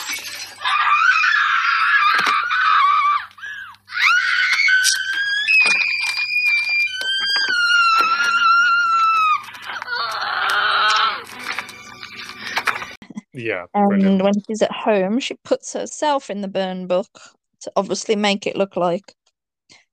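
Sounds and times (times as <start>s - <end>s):
woman screaming in anger: 0.6s - 11.3s
speech: 13.4s - 19.2s.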